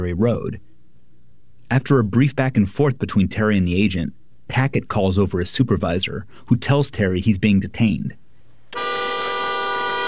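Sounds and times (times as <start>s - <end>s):
speech: 0.0s - 0.7s, 1.7s - 8.2s
car horn honking at a checkpoint on a secondary road: 8.8s - 10.0s.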